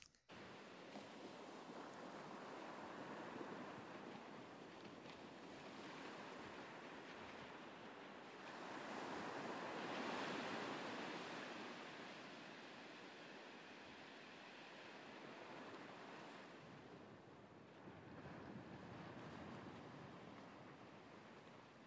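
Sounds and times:
ocean waves breaking on a beach: 0:00.0 - 0:21.8.

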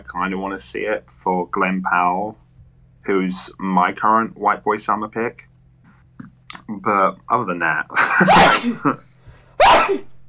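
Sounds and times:
speech: 0:00.0 - 0:02.4, 0:03.0 - 0:05.5, 0:06.2 - 0:09.1, 0:09.9 - 0:10.1
person sneezing: 0:08.2 - 0:08.9, 0:09.6 - 0:10.2.

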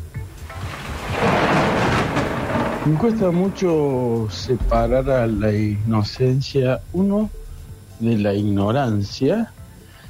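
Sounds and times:
steady rain hissing: 0:00.0 - 0:07.8
deep rolling thunder: 0:00.0 - 0:08.4
speech: 0:02.9 - 0:07.4, 0:08.0 - 0:09.6.

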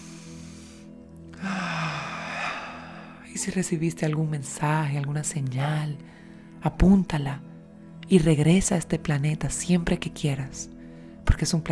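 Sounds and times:
person breathing slowly in and out during a guided relaxation exercise: 0:00.0 - 0:03.3
speech: 0:03.4 - 0:07.5, 0:08.1 - 0:11.7.

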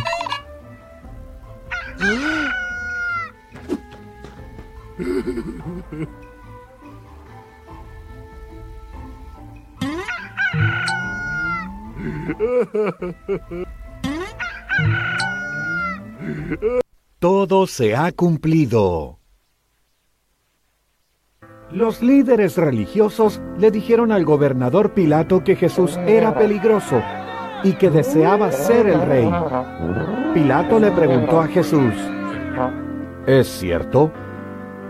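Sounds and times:
rooster crowing: 0:01.7 - 0:03.4, 0:10.1 - 0:11.8, 0:14.4 - 0:16.2, 0:25.8 - 0:33.0
speech: 0:02.0 - 0:02.3, 0:05.0 - 0:06.3, 0:12.3 - 0:13.8, 0:16.3 - 0:19.2, 0:21.7 - 0:34.2
laughter: 0:05.0 - 0:06.2, 0:12.0 - 0:13.7, 0:25.7 - 0:32.8.

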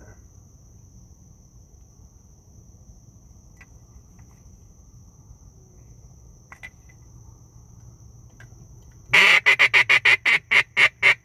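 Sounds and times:
coot cackling from grass: 0:09.1 - 0:11.2.

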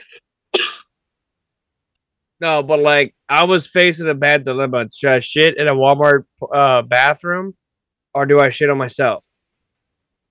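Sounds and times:
cough: 0:00.6 - 0:00.9
speech: 0:02.4 - 0:07.6, 0:08.2 - 0:09.3.

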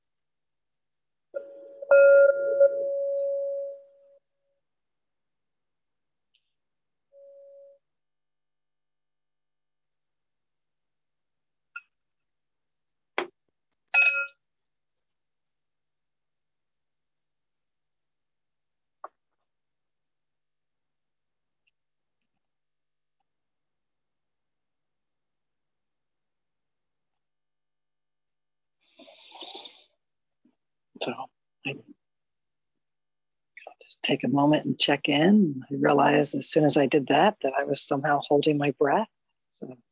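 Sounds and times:
meditation bell struck in a morning awareness practice: 0:01.4 - 0:04.2
speech: 0:31.0 - 0:32.0, 0:33.9 - 0:39.9.

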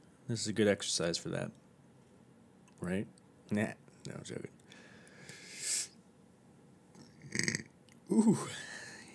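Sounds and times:
speech: 0:00.3 - 0:01.6, 0:02.8 - 0:04.6, 0:08.1 - 0:08.6
burps into the microphone: 0:07.0 - 0:08.4.

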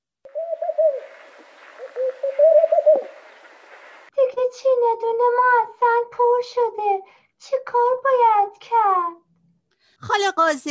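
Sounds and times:
turtle dove cooing: 0:00.3 - 0:04.1
speech: 0:04.6 - 0:09.2, 0:10.0 - 0:10.6.

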